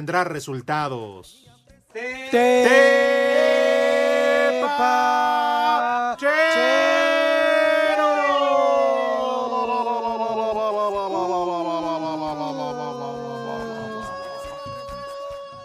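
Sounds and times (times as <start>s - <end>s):
speech: 0.0s - 3.5s, 4.7s - 6.8s
laughter: 4.1s - 6.1s, 9.4s - 15.3s
loud steady wailing ambulance siren tone: 6.6s - 14.5s.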